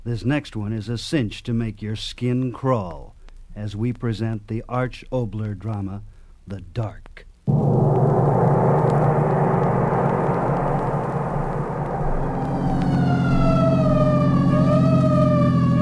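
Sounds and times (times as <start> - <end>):
speech: 0.0 - 7.8
loud vehicle engine rumbling: 7.5 - 15.8
emergency siren wailing: 12.2 - 15.8.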